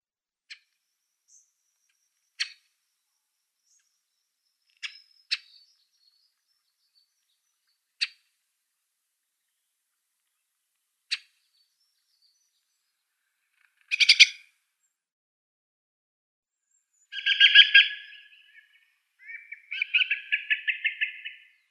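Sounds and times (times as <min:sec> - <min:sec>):
Dusky thrush calls: 0:17.2 - 0:21.5.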